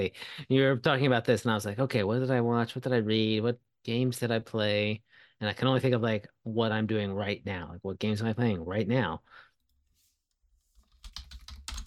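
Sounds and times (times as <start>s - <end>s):
speech: 0.0s - 9.4s
typing on a computer keyboard: 10.8s - 11.8s.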